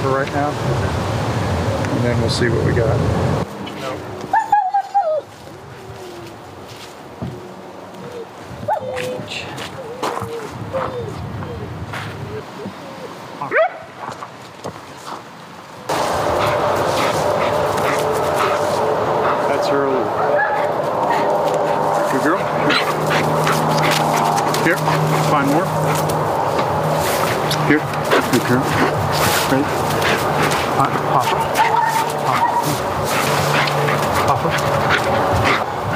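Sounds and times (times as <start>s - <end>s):
speech: 0.0s - 1.0s, 1.9s - 3.4s
steady rushing noise: 0.0s - 4.3s, 14.1s - 35.9s
dog whimpering: 4.3s - 6.3s, 9.7s - 13.1s, 22.5s - 26.0s, 31.2s - 35.9s
dog barking: 13.5s - 13.9s, 16.3s - 19.5s, 20.1s - 21.8s, 22.5s - 26.1s, 31.2s - 35.6s.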